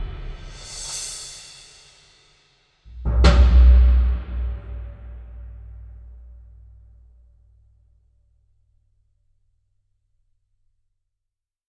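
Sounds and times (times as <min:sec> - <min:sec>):
mallet drums in an aircraft hangar: 0:02.9 - 0:05.1.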